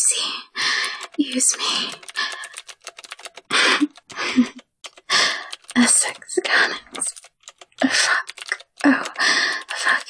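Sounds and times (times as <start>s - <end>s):
typing on a keyboard: 0.6s - 10.0s
speech: 1.3s - 2.1s.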